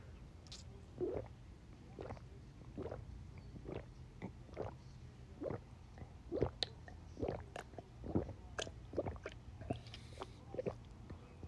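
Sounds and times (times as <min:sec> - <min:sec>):
person gulping water from a cup covered with aluminum foil: 0:01.0 - 0:01.3, 0:02.0 - 0:02.2, 0:02.8 - 0:03.0, 0:03.6 - 0:04.8, 0:05.4 - 0:05.6, 0:06.3 - 0:09.9, 0:10.5 - 0:10.8.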